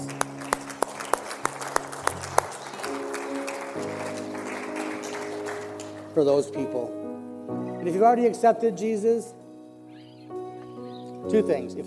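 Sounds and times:
audience clapping sharply: 0.0s - 6.4s
instrumental music: 0.0s - 11.8s
speech: 6.2s - 7.1s, 7.8s - 9.4s, 11.3s - 11.8s.

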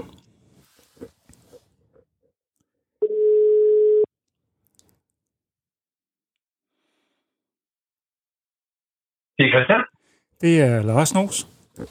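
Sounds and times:
telephone ringing tone: 3.0s - 4.1s
speech: 9.4s - 11.8s.

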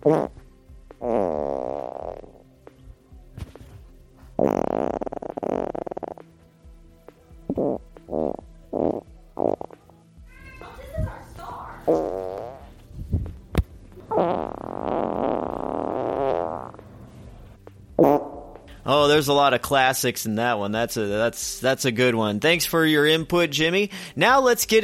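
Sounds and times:
speech: 0.0s - 0.4s, 19.2s - 24.8s
recorded farts: 0.0s - 2.6s, 3.4s - 6.3s, 7.5s - 9.9s, 11.9s - 12.8s, 14.0s - 16.9s, 18.0s - 18.7s.

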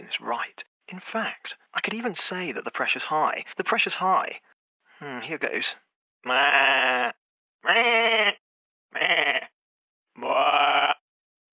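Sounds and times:
speech: 0.1s - 9.5s
person on a phone call imitating sheep bleating: 6.2s - 9.5s, 10.2s - 11.0s.

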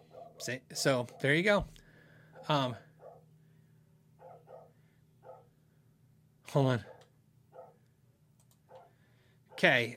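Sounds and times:
dog barking: 0.0s - 1.4s, 2.3s - 3.3s, 4.2s - 5.6s, 6.8s - 7.8s, 8.7s - 9.8s
low steady hum: 0.0s - 9.9s
speech: 0.4s - 1.8s, 2.4s - 2.8s, 6.5s - 6.9s, 9.6s - 9.9s.

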